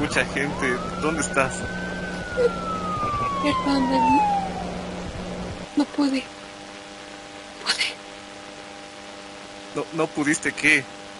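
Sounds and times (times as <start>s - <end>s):
speech: 0.0s - 2.8s, 3.4s - 4.4s, 5.8s - 6.4s, 9.8s - 11.0s
voices murmuring: 0.0s - 4.6s
ambulance siren with steady tone sliding down in pitch: 0.0s - 5.0s
low engine-like hum: 0.0s - 5.8s.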